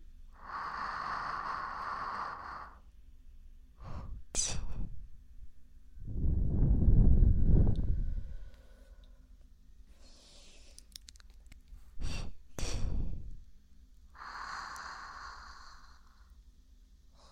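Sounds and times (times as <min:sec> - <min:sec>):
deep airy breaths during a relaxation breathing exercise: 0:00.3 - 0:03.0, 0:03.8 - 0:05.0, 0:07.0 - 0:10.8, 0:11.9 - 0:13.5, 0:14.1 - 0:16.4.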